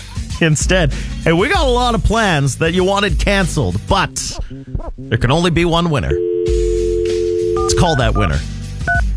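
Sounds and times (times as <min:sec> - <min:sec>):
speech: 0:00.4 - 0:06.3, 0:07.7 - 0:08.6
low humming background: 0:06.1 - 0:08.4
telephone keypad two-tone beeps: 0:06.1 - 0:09.0.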